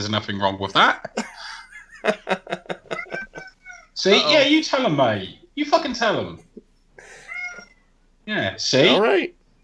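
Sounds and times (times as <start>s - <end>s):
speech: 0.0s - 1.2s, 2.0s - 2.8s, 4.0s - 6.5s, 8.3s - 9.4s
laughter: 0.6s - 3.8s
cat meowing: 2.9s - 4.4s, 7.0s - 7.9s.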